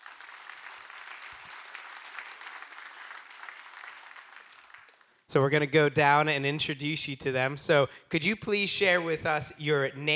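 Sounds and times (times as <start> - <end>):
audience round of applause: 0.0 - 5.3
speech: 5.3 - 10.1.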